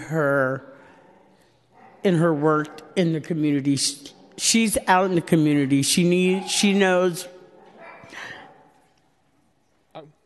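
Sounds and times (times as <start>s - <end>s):
speech: 0.1s - 0.8s, 2.0s - 7.4s
puppy barking: 6.2s - 8.7s.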